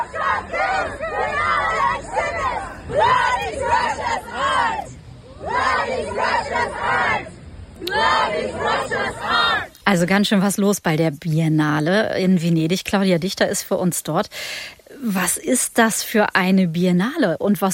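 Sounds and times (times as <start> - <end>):
protesters shouting and chanting outside an exhibition pavilion: 0.0 - 9.7
speech: 8.0 - 17.7.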